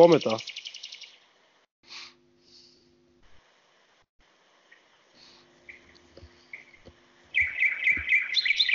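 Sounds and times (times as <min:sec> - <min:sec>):
nightingale singing in daytime: 0:00.1 - 0:01.2, 0:05.6 - 0:08.7
low steady hum: 0:01.2 - 0:08.7.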